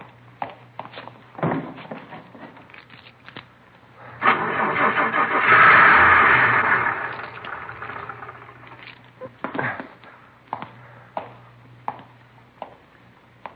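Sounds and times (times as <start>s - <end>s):
steady low hum: 3.6s - 12.5s
car engine cranking: 4.2s - 9.0s.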